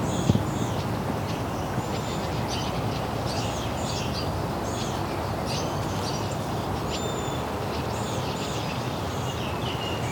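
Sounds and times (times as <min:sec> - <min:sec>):
Wilson's Warbler singing high chattering phrases: 0:00.0 - 0:10.1
steady hiss of outdoor noise: 0:00.0 - 0:10.1.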